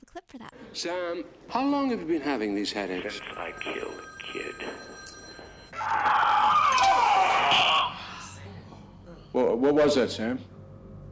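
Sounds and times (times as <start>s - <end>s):
speech: 0.2s - 4.5s, 9.4s - 10.5s
person screaming in pain: 5.8s - 8.4s.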